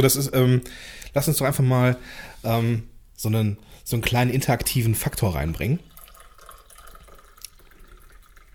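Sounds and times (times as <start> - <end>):
speech: 0.0 - 5.9
coffee pouring into a cup: 5.4 - 8.5.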